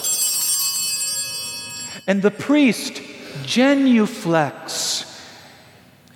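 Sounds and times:
cluster of small altar bells rung by a server: 0.0s - 2.4s
speech: 2.0s - 5.0s.

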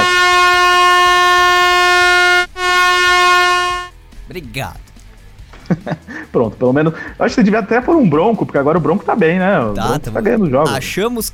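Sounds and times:
air horn blaring: 0.0s - 4.0s
speech: 4.6s - 4.9s, 5.7s - 11.3s
laughter: 5.6s - 6.4s.

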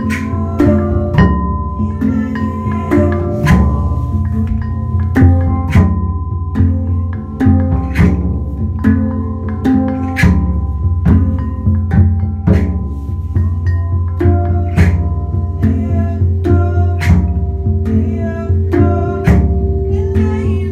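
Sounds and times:
drum circle playing: 0.0s - 20.7s
sustained ringing bell or metal chime tones: 0.0s - 20.7s.

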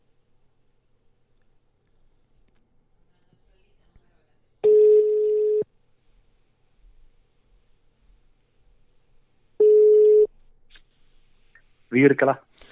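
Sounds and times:
phone ringing tones on an Apple phone: 4.6s - 5.6s, 9.6s - 10.3s
speech: 11.9s - 12.7s.

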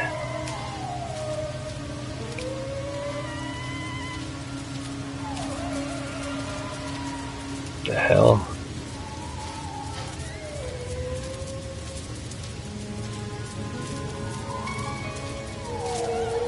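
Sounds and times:
whistling sliding creature-like calls in a video game: 0.0s - 12.7s, 13.3s - 16.4s
steady alkaline rain hissing in a video game desert: 0.0s - 16.4s.

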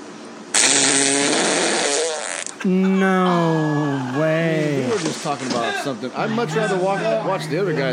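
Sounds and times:
loud sustained fart by a woman: 0.5s - 2.6s
speech: 2.6s - 3.8s, 5.0s - 7.9s.

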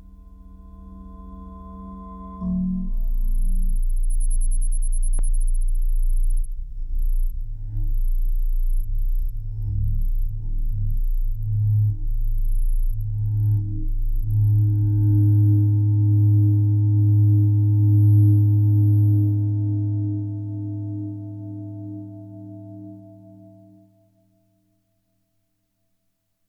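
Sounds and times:
soft low humming and purring drone: 0.0s - 24.4s
faint thin high chirping: 4.1s - 5.5s.

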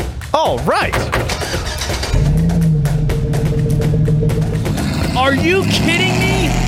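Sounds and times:
speech: 0.3s - 2.3s, 5.2s - 6.6s
midsize luxury pickup truck engine cranking and starting: 1.0s - 6.6s.

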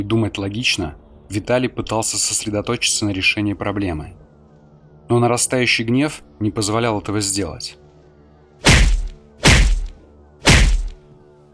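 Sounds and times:
speech: 0.0s - 4.2s, 5.1s - 7.8s
heavy kicks on a metal elevator door: 8.7s - 9.9s.

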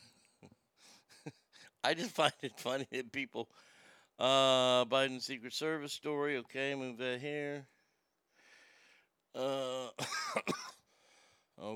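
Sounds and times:
speech: 1.2s - 7.7s, 9.3s - 10.6s
faint breath: 3.5s - 4.2s, 8.3s - 9.2s, 10.9s - 11.6s
raspy inhale: 3.5s - 4.2s, 8.3s - 9.2s, 10.9s - 11.6s
person coughing harshly: 9.6s - 10.8s.

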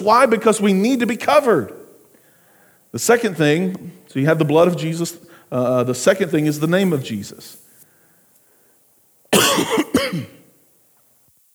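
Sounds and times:
speech: 0.0s - 1.8s, 2.9s - 7.6s
loud cough into the microphone: 9.3s - 10.6s.

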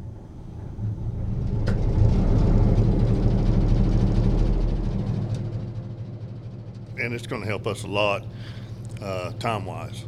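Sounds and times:
big 12-cylinder diesel locomotive engine rumbling: 0.0s - 10.0s
speech: 7.0s - 10.0s.

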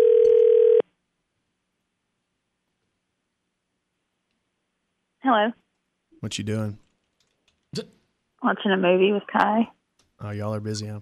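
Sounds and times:
steady telephone ringing tone: 0.0s - 0.8s
speech: 5.3s - 5.6s, 6.2s - 6.8s, 7.7s - 11.0s
faint voice: 6.2s - 6.8s, 10.2s - 11.0s.

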